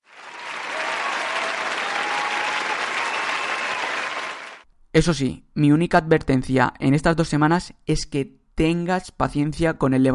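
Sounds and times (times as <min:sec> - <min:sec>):
crowd applauding: 0:00.0 - 0:04.6
speech: 0:05.0 - 0:10.1.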